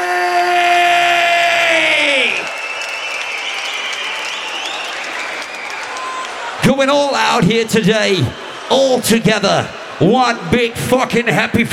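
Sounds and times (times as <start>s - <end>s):
long sustained shout: 0.0s - 2.5s
festival crowd roaring and cheering: 0.0s - 11.7s
speech: 6.8s - 11.7s.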